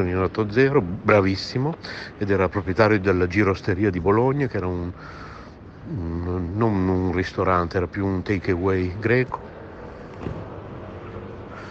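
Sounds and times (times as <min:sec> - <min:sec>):
speech: 0:00.0 - 0:05.3, 0:05.9 - 0:09.5, 0:10.2 - 0:10.4
city bus engine drone: 0:00.0 - 0:11.6
city bus road noise: 0:00.0 - 0:11.6
brief thump: 0:10.2 - 0:10.7.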